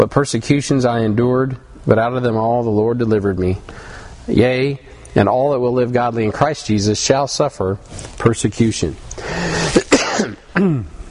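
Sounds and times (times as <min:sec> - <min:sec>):
speech: 0:00.0 - 0:09.8, 0:10.6 - 0:11.0
harsh raspy coughs: 0:09.3 - 0:11.0.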